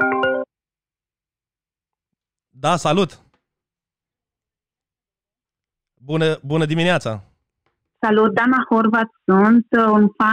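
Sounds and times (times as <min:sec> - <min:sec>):
electronic phone ring on a live call-in line: 0:00.0 - 0:00.5
speech: 0:02.6 - 0:03.2, 0:06.0 - 0:07.3, 0:08.0 - 0:10.3.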